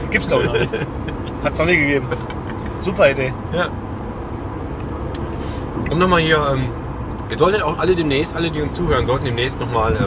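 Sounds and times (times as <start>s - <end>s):
road noise inside a moving car: 0.0s - 10.0s
laughter: 0.1s - 2.9s
speech: 0.1s - 3.8s, 5.8s - 10.0s.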